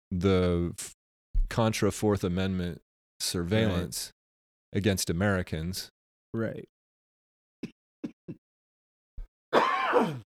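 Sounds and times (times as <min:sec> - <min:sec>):
speech: 0:00.2 - 0:06.7
person coughing: 0:09.6 - 0:10.3.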